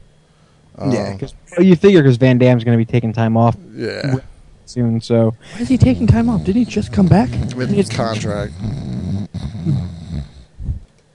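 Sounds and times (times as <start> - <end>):
speech: 0.8 - 10.0
person snoring into the microphone: 5.5 - 10.6.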